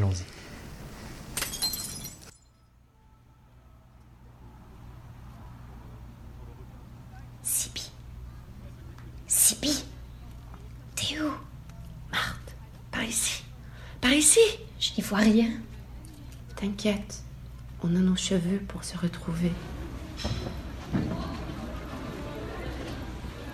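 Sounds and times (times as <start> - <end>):
low steady hum: 0.0 - 23.5
lantern glass shattering: 1.4 - 2.7
speech: 14.2 - 15.7, 16.6 - 17.2, 17.8 - 20.3.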